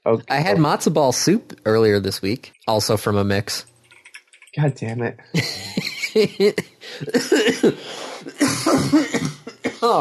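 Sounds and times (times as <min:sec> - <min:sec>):
speech: 0:00.0 - 0:03.7, 0:04.5 - 0:09.9
laughter: 0:05.4 - 0:09.9
person coughing harshly: 0:06.4 - 0:09.9
throat clearing: 0:06.9 - 0:09.9.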